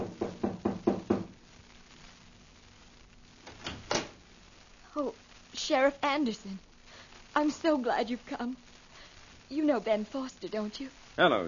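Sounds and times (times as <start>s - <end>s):
knocking on a wooden front door: 0.0s - 1.3s
speech: 5.0s - 6.7s, 7.4s - 8.7s, 9.5s - 11.4s.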